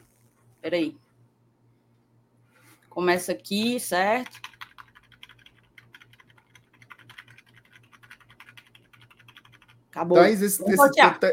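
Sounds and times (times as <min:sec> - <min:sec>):
steady low electrical hum: 0:00.0 - 0:11.3
speech: 0:00.6 - 0:01.0, 0:03.0 - 0:04.5, 0:10.0 - 0:11.3
rapid typing on an old-style computer keyboard: 0:04.1 - 0:09.9.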